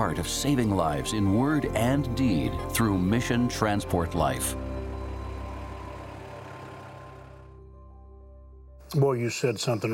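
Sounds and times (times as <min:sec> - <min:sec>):
speech: 0:00.0 - 0:04.6, 0:08.9 - 0:09.9
truck diesel engine rumbling and pulling away: 0:00.0 - 0:07.9.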